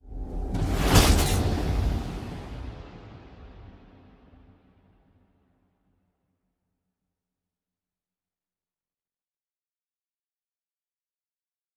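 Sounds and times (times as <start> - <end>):
ship moving: 0.6 - 2.1.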